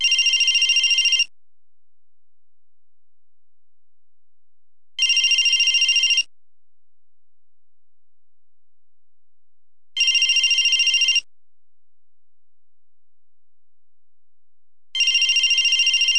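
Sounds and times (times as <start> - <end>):
cell phone ringing: 0.0 - 1.3, 5.0 - 6.3, 10.0 - 11.3, 15.0 - 16.1.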